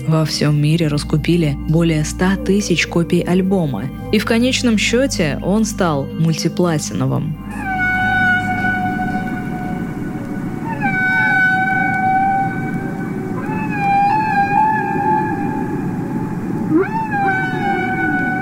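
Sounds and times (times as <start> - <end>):
speech: 0.0 - 7.7
humpback whale singing long wavering tonal calls: 7.3 - 18.4.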